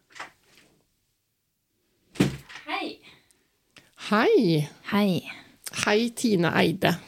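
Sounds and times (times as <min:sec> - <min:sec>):
door thudding and rattling: 0:02.2 - 0:02.6
speech: 0:04.1 - 0:07.0.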